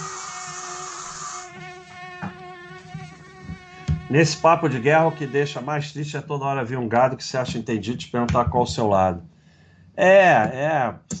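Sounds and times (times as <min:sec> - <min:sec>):
mosquito whining with a thin high-pitched buzz: 0:00.0 - 0:05.8
soft knocks and bumps: 0:02.2 - 0:04.2, 0:07.4 - 0:09.0
speech: 0:04.1 - 0:09.3, 0:10.0 - 0:11.1.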